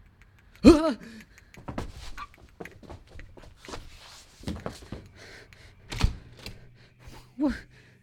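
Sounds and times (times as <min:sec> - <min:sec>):
dry clicks and taps: 0:00.0 - 0:03.5.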